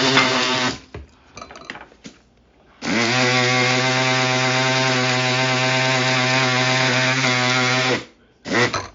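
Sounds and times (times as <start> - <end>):
small electric coffee grinder regrinding ground coffee: 0.0 - 0.9, 2.8 - 8.8.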